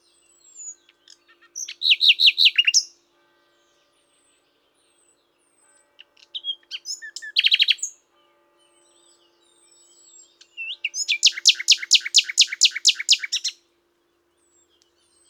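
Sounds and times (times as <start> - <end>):
common nightingale singing: 0.0 - 3.0, 6.0 - 8.0, 8.9 - 15.2.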